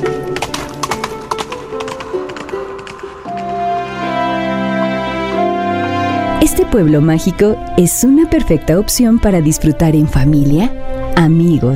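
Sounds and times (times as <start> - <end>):
horse hooves clip-clopping in a quick uneven trot: 0.0 - 4.4
sustained musical tones: 0.0 - 11.7
speech: 6.5 - 11.7.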